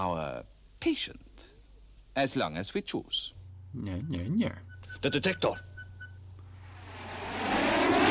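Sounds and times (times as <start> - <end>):
speech: 0.0 - 1.5, 2.2 - 5.7
rescue plane flying overhead with broad engine roar: 6.6 - 8.0.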